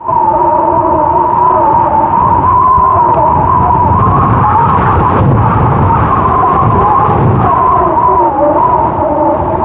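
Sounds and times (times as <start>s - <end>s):
whistling wind: 0.0s - 9.6s.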